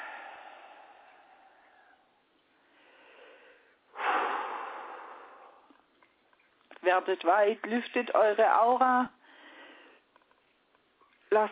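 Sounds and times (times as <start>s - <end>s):
person breathing in and out during a guided meditation: 0.0s - 5.9s, 9.2s - 10.1s
speech: 6.9s - 9.2s, 11.3s - 11.5s.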